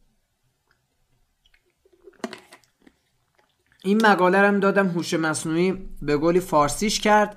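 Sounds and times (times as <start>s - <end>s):
person sipping water: 1.4s - 3.9s
speech: 3.8s - 7.3s.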